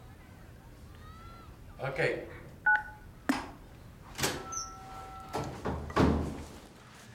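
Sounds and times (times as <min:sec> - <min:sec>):
speech: 0:01.8 - 0:02.4
short electronic beeps: 0:04.4 - 0:05.3
door that won't open being tried: 0:05.3 - 0:06.4.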